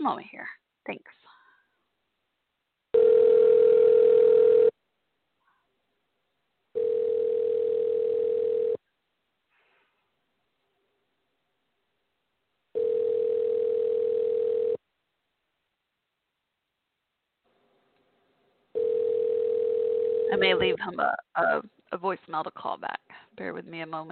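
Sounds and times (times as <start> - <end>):
speech: 0.0 - 1.2, 20.5 - 24.1
telephone ringing tone on an outgoing call: 3.0 - 4.8, 6.8 - 8.8, 12.7 - 14.8, 18.7 - 20.8.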